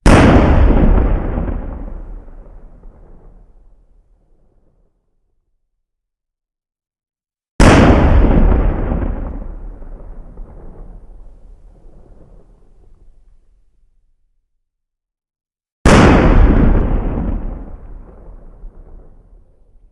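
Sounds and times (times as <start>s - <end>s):
broken explosion with boomy crack: 0.0s - 3.8s, 7.6s - 13.4s, 15.9s - 19.9s.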